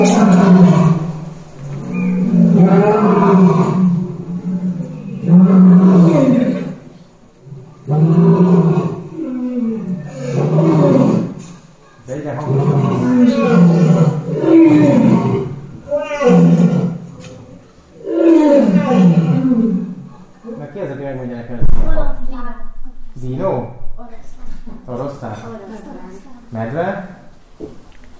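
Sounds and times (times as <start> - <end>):
lion roaring: 0.0 - 20.6.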